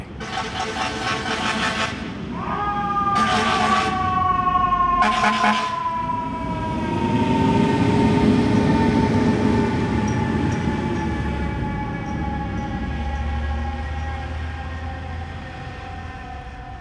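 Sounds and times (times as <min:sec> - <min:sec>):
loud harsh fire truck horn blasts: 0:00.0 - 0:02.4, 0:05.0 - 0:05.8
fire truck siren wailing: 0:00.0 - 0:16.8
low rumble of city street noise: 0:00.0 - 0:16.8
speech: 0:05.2 - 0:05.8.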